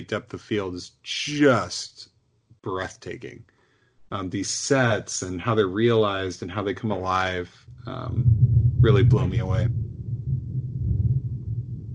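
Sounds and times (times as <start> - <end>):
speech: 0.0 - 3.5, 4.1 - 9.8
thunder rumbling in a thunderstorm outside: 6.9 - 11.9.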